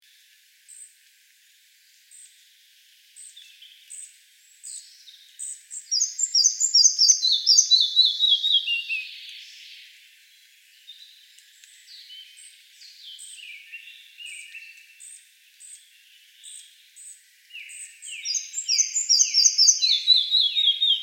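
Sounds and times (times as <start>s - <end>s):
male red-breasted flycatcher singing: 5.9s - 9.2s, 17.6s - 21.0s.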